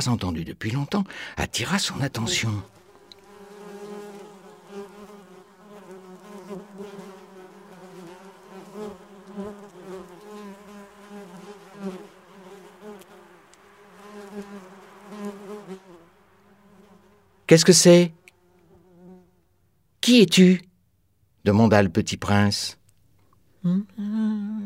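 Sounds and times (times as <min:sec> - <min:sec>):
speech: 0:00.0 - 0:02.8, 0:17.5 - 0:18.2, 0:20.0 - 0:20.7, 0:21.4 - 0:22.8, 0:23.6 - 0:24.6
bee buzzing: 0:02.0 - 0:19.4.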